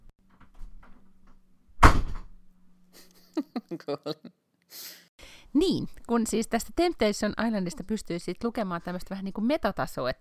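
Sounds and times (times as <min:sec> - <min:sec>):
door being pushed shut: 0:00.3 - 0:02.4
laughter: 0:03.0 - 0:04.3
speech: 0:03.7 - 0:04.9, 0:05.5 - 0:10.1.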